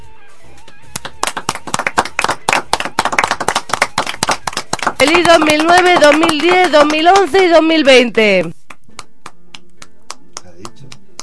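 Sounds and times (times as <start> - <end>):
enthusiastic audience applause: 1.0 - 7.6
speech: 5.0 - 8.6.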